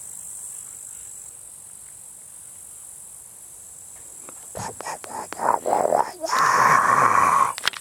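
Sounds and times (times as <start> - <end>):
insects buzzing on a moor: 0.0 - 7.7
rhythmic croaking pulses on a moor: 4.5 - 7.7.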